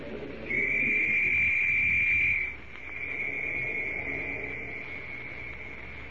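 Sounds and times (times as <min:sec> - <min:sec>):
low rumbling background: 0:00.0 - 0:06.1
police whistle blown loudly in a valley: 0:00.5 - 0:03.6.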